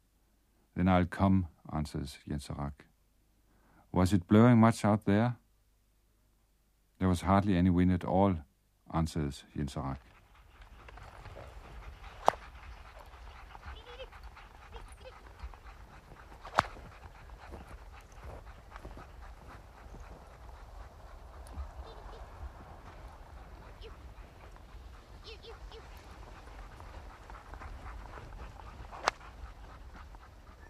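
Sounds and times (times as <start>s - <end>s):
speech: 0.8s - 2.9s, 3.9s - 5.4s, 7.0s - 10.1s
dog sledge runners scraping over snow: 10.0s - 30.6s
sled dog harness clicking and jingling: 10.0s - 30.6s.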